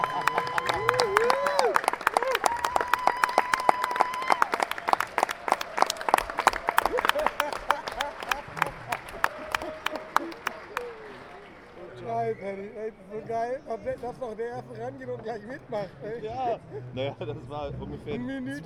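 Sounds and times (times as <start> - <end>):
cheering: 0.0 - 11.8
audience applause: 0.0 - 11.9
laughter: 6.1 - 12.6, 14.8 - 18.6
speech: 13.6 - 18.6.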